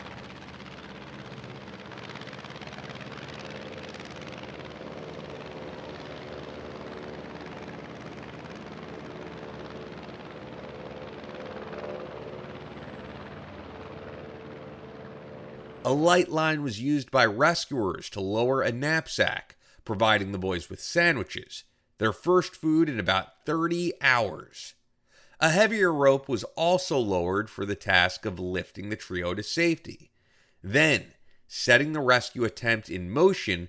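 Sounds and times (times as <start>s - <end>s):
aircraft engine droning overhead on a flyby: 0.0s - 18.0s
speech: 15.9s - 24.8s, 25.4s - 33.6s.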